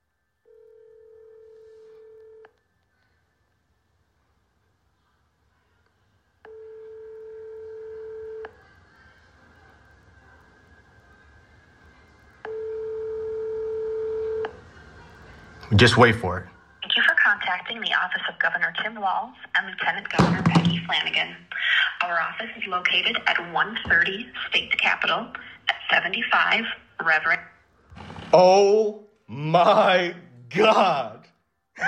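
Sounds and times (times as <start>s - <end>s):
telephone ringback tones on the line: 0.5s - 2.5s, 6.5s - 8.6s, 12.4s - 14.6s
speech: 15.7s - 16.6s, 17.7s - 27.5s, 28.3s - 31.2s.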